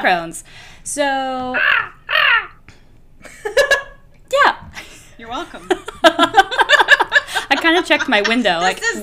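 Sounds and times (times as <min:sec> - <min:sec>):
speech: 0:00.0 - 0:02.3, 0:05.2 - 0:06.3, 0:07.6 - 0:09.0
person doing a crow impression with harsh caws and a rising squawk: 0:01.5 - 0:02.6
laughter: 0:03.2 - 0:04.0, 0:05.6 - 0:09.0.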